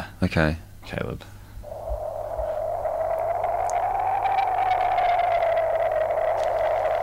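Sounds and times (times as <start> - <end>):
speech: 0.2 - 1.4
strong wind buffeting a GoPro microphone atop an antenna: 1.6 - 7.0.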